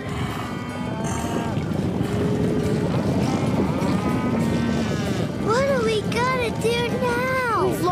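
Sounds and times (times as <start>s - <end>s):
cattle mooing: 0.0s - 5.5s
many cattle hooves pounding in a stampede: 0.0s - 7.9s.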